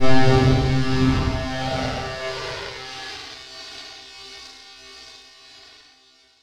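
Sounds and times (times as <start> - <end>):
filtered electronic warp: 0.0 - 3.2.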